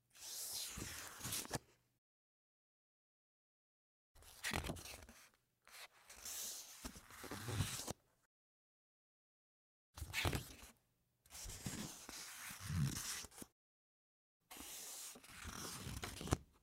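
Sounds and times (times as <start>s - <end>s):
quiet page turning: 0.2s - 1.6s, 4.2s - 8.0s, 11.4s - 13.5s, 14.5s - 16.4s.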